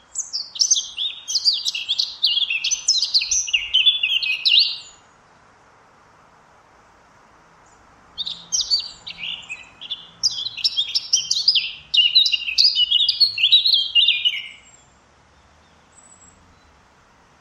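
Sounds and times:
Eurasian blackcap singing quick varied scratchy warbling phrases: 0.2s - 4.8s, 8.2s - 14.6s.

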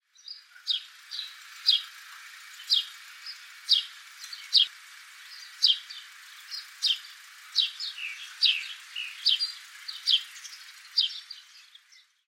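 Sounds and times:
house sparrow chirping: 0.1s - 12.2s.

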